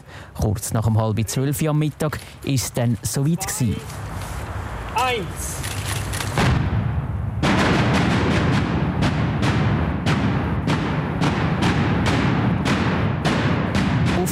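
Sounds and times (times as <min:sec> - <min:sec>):
speech: 0:00.4 - 0:04.1, 0:05.0 - 0:05.7
sharp detonation cracks: 0:06.2 - 0:14.2
tunnel construction blasting explosion: 0:06.4 - 0:14.2.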